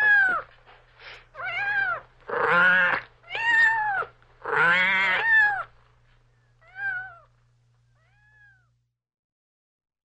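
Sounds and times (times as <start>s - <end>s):
cat meowing: 1.4s - 5.7s, 6.6s - 7.3s, 8.0s - 8.8s.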